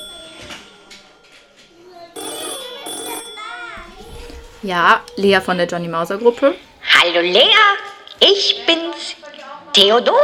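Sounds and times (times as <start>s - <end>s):
telephone ringing with a bright electronic melodic ringtone: 0.0s - 4.2s
children talking: 0.0s - 10.2s
speech: 4.6s - 9.2s, 9.8s - 10.2s.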